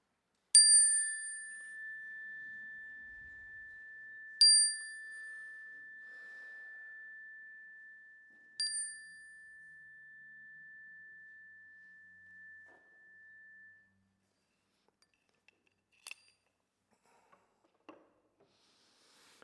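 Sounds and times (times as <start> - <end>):
clear metal chime struck in a sanctuary during prayers: 0.6 - 14.1.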